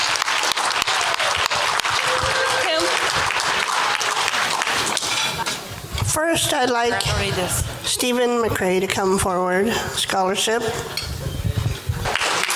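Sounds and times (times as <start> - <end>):
room full of people applauding: 0.0 - 5.5, 12.0 - 12.5
speech: 6.2 - 11.1.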